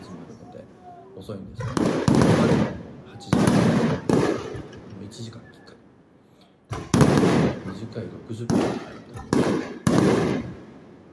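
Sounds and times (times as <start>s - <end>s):
speech: 1.2s - 4.1s, 5.1s - 5.8s, 7.8s - 9.8s
fireworks exploding: 1.5s - 5.4s, 6.7s - 11.1s.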